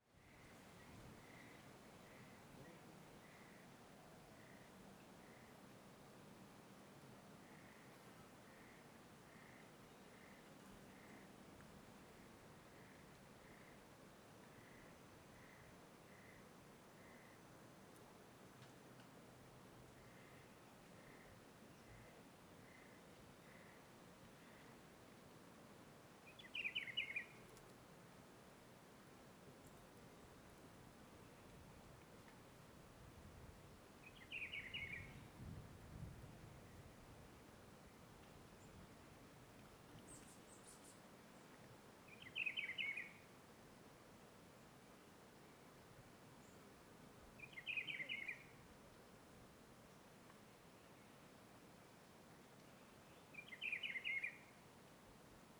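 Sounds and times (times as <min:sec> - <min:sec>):
wind on a road in Planaltina: 0:00.0 - 0:55.5
bird singing by day in rural Planaltina: 0:47.4 - 0:48.4, 0:53.4 - 0:54.4.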